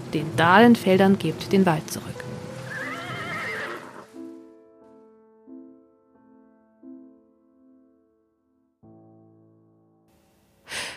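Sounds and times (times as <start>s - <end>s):
speech: 0.1s - 2.2s
horse whinnying: 2.6s - 4.1s.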